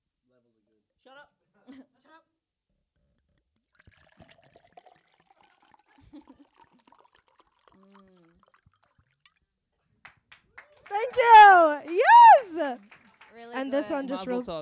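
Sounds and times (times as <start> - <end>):
water pouring into a glass: 3.6 - 9.5
speech: 10.9 - 14.6.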